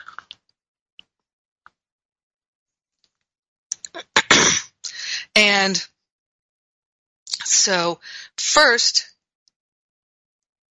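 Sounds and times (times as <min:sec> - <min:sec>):
mouth clicks: 0:00.0 - 0:00.4, 0:03.7 - 0:04.1
person slurping while sipping an espresso: 0:00.0 - 0:00.4
person swallowing espresso: 0:00.0 - 0:00.4
speech: 0:05.4 - 0:05.9, 0:07.6 - 0:09.1.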